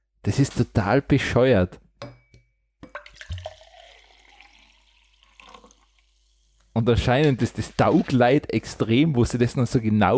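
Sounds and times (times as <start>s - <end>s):
speech: 0.2s - 2.1s, 6.8s - 10.1s
glass clinks: 2.0s - 3.1s
water pouring into a glass: 2.8s - 6.8s.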